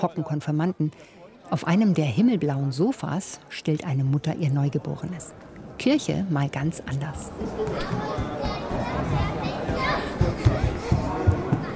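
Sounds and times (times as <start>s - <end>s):
speech: 0.0s - 10.6s
steady murmur of voices inside a church: 0.0s - 11.7s
children playing tag inside a church: 7.1s - 11.7s
footsteps inside a church: 7.3s - 11.7s.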